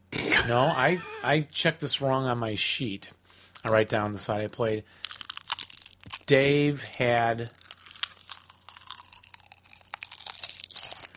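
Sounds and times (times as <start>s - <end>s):
speech: 0.4s - 5.1s, 6.3s - 7.6s
crunching and chewing of crisp food: 4.9s - 11.1s.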